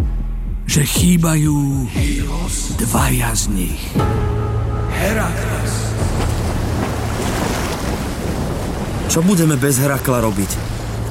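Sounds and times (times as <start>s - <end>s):
speech: 0.7s - 6.4s, 9.1s - 11.0s
sea waves around a sailing ship at sea: 3.9s - 11.0s
gusting wind around a sailing ship at sea: 4.1s - 11.0s.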